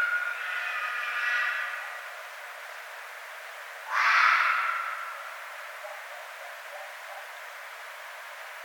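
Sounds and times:
red fox scream, hoarse cry and harsh drawn-out scream: 0:00.0 - 0:02.0, 0:03.9 - 0:05.2.

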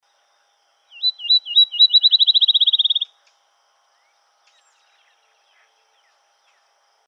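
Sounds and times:
field sparrow song of slurred whistles and trill: 0:00.9 - 0:03.1.

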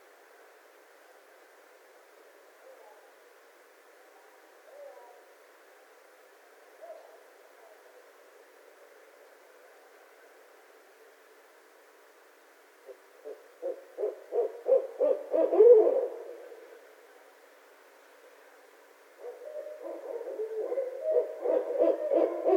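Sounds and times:
barred owl hooting: 0:12.8 - 0:16.7, 0:19.2 - 0:22.5.

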